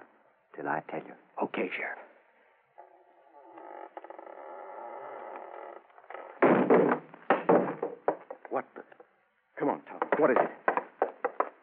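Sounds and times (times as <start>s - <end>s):
speech: 0.6s - 2.0s, 8.5s - 8.9s, 9.6s - 10.6s
heavy thuds of a door giving way: 6.3s - 8.1s.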